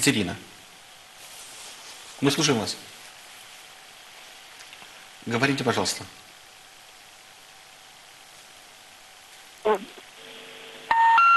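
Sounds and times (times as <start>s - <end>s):
speech: 0.0s - 0.5s, 2.2s - 2.9s, 5.2s - 6.2s
steady electronic telephone line tones as a call drops on a live radio line: 9.6s - 11.3s
warbling telephone line tone on a live radio call line: 10.2s - 11.3s.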